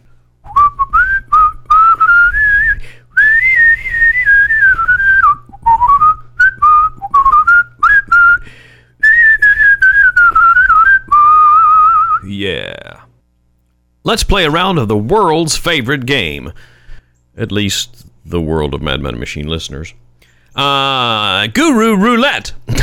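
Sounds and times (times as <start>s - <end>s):
song with bright whistled melody: 0.5s - 8.4s, 9.0s - 12.2s
speech: 14.1s - 16.7s, 17.4s - 20.0s, 20.6s - 22.6s.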